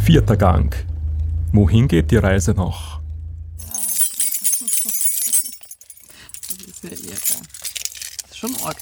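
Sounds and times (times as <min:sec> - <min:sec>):
speech: 0:00.1 - 0:00.9, 0:01.5 - 0:03.0
two key rings full of keys jangling: 0:03.6 - 0:08.8.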